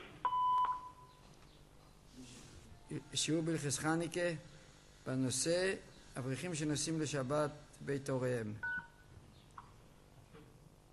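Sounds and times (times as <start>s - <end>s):
answering machine beep prompting a recorded message: 0.2s - 1.2s, 8.6s - 9.0s
speech: 2.9s - 8.7s.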